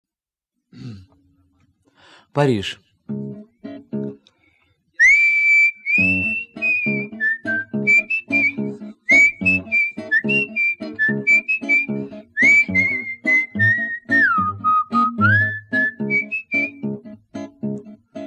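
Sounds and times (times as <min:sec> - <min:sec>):
speech: 0:02.3 - 0:03.2
rhythmic strummed guitar accompaniment: 0:03.0 - 0:04.5, 0:05.9 - 0:18.2
person whistling a melodic tune: 0:05.0 - 0:17.0.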